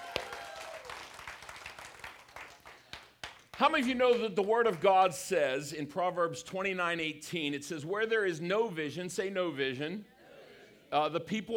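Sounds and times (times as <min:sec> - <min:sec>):
audience clapping hands in applause: 0:00.0 - 0:03.9
speech: 0:03.6 - 0:10.1, 0:10.9 - 0:11.5.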